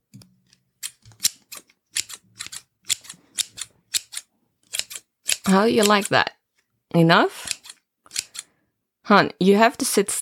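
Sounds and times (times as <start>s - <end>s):
scissors snipping hair during a haircut: 0.8s - 6.2s, 7.4s - 8.5s
speech: 5.5s - 7.4s, 9.1s - 10.1s.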